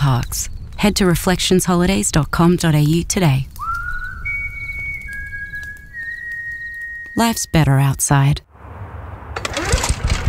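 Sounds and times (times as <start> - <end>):
speech: 0.1 - 3.5, 7.2 - 8.5
small petrol lawnmower engine sputtering and labouring: 9.4 - 10.2.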